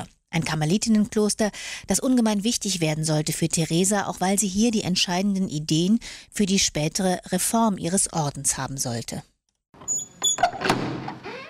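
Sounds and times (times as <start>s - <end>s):
speech: 0.0s - 9.3s
heavy door of an old Carmelite convent creaking: 9.8s - 11.4s.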